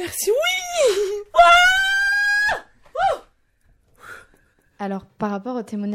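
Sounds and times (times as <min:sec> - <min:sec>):
speech: 0:00.0 - 0:01.2, 0:04.8 - 0:05.9
woman crying with joy: 0:00.0 - 0:03.3
woman wailing with joy: 0:00.3 - 0:03.3.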